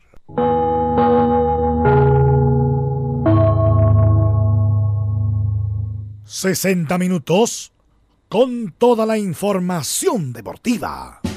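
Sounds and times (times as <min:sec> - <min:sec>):
gong strikes cueing radio network connection: 0:00.4 - 0:06.2
speech: 0:06.4 - 0:11.2.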